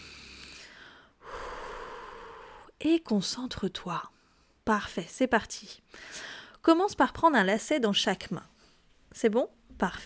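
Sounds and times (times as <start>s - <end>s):
deep breath in during a calm guided exercise: 0.0s - 2.7s, 5.9s - 6.6s
speech: 2.8s - 8.5s, 9.1s - 10.0s.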